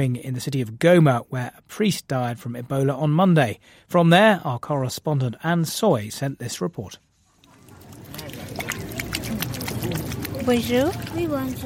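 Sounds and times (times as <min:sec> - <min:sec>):
speech: 0:00.0 - 0:07.0, 0:10.4 - 0:11.6
water splashing as a little boy washes his hands: 0:07.2 - 0:11.6.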